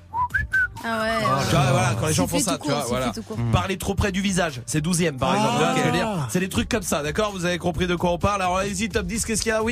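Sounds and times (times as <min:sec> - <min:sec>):
person whistling improvised random notes: 0:00.0 - 0:01.4
speech: 0:00.8 - 0:09.6.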